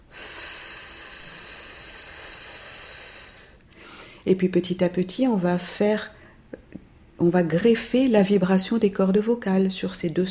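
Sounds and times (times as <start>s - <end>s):
breathy stream of air blown through the mouth as a voice exercise: 0.0s - 3.6s
speech: 4.2s - 6.2s, 7.2s - 10.2s.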